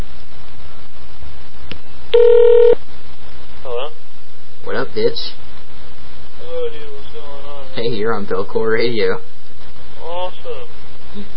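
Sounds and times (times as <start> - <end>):
phone keypad dialing tones: 2.2 - 2.8
speech: 8.1 - 9.3.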